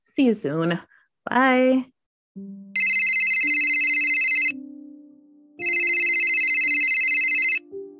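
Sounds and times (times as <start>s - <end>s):
speech: 0.2s - 2.7s
phone ringtone ringing: 2.8s - 4.6s, 5.6s - 7.7s.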